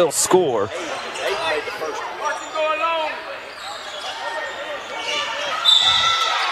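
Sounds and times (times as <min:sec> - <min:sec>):
speech: 0:00.0 - 0:01.4
basketball gym crowd roaring and chattering: 0:00.0 - 0:06.5
sneakers squeaking on the basketball court: 0:00.7 - 0:02.8, 0:03.4 - 0:06.5
sharp whistle-like squeal: 0:05.6 - 0:06.3.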